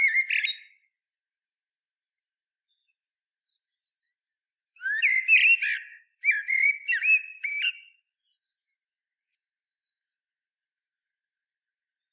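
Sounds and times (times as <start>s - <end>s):
common blackbird Turdus merula fluting song: 0.0s - 0.8s, 4.8s - 8.4s.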